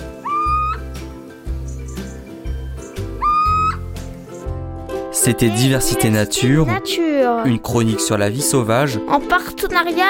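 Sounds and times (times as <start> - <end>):
tawny owl, barn owl and little owl calling: 0.0 - 4.5
speech: 5.2 - 10.0.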